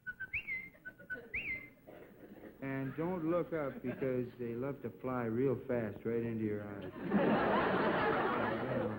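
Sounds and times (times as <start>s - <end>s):
falconry return whistle used when hunting: 0.0s - 1.7s
laughter: 0.7s - 4.3s, 6.8s - 8.9s
speech: 2.6s - 8.9s.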